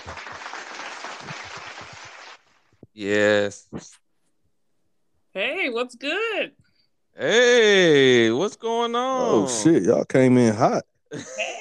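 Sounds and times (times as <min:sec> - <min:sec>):
dense steady hand clapping applause: 0:00.0 - 0:02.7
speech: 0:03.0 - 0:04.0, 0:05.4 - 0:06.6, 0:07.2 - 0:11.5.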